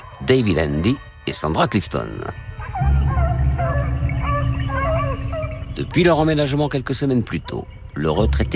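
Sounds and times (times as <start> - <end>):
speech: 0.3 - 2.5, 5.8 - 8.5
pack of pedigree beagles barking and baying in their enclosure: 1.5 - 8.5
low rumbling background: 2.3 - 8.5.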